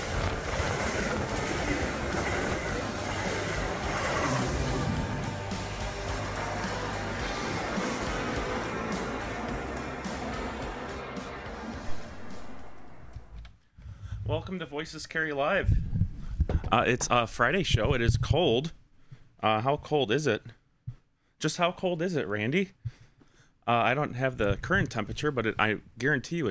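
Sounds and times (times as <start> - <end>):
express commuter train roaring through a station: 0.0 - 13.2
speech: 14.4 - 15.8, 16.7 - 18.8, 19.4 - 20.6, 21.4 - 22.8, 23.7 - 26.4.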